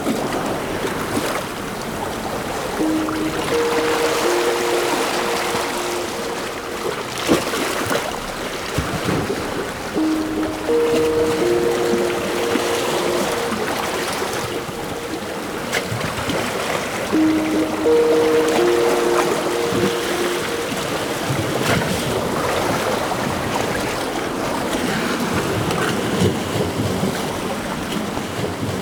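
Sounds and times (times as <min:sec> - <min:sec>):
sea waves: 0:00.0 - 0:28.8
faint tonal call: 0:02.8 - 0:08.2, 0:10.0 - 0:23.5.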